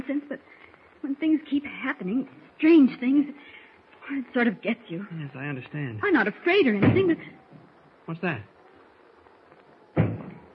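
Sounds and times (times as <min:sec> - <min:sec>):
speech: 0:01.2 - 0:07.4, 0:08.1 - 0:08.5
heavy thud against a door: 0:10.0 - 0:10.4.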